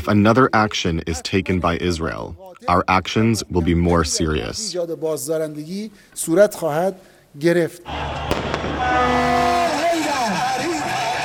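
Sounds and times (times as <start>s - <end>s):
speech: 0.0s - 9.6s
people shouting: 7.9s - 11.2s
fireworks set off by celebrating hardliners on the streets of Tehran, Iran: 8.2s - 9.6s.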